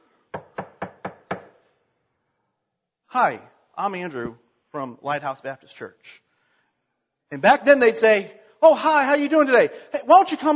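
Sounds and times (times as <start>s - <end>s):
firm knocking on a wooden door: 0.3s - 1.5s
speech: 3.1s - 6.2s, 7.3s - 10.5s.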